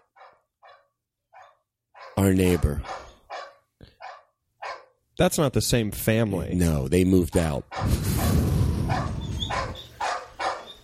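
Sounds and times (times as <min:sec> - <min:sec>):
neighbor's dog barking: 0:00.0 - 0:05.0, 0:07.7 - 0:08.3, 0:08.9 - 0:10.8
speech: 0:02.2 - 0:03.0, 0:05.2 - 0:09.2.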